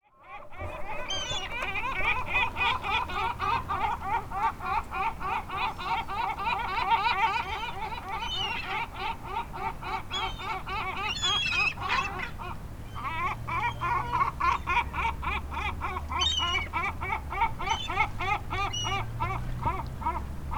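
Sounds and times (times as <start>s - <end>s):
seagulls fighting for fish at Playa Balandra: 0.2s - 20.5s.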